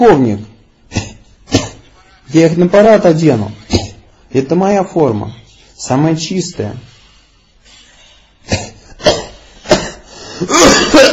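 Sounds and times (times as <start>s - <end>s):
speech: 0.0s - 0.5s, 2.3s - 3.6s, 4.3s - 6.9s, 10.4s - 11.1s
man coughing: 0.8s - 2.1s, 8.4s - 11.1s.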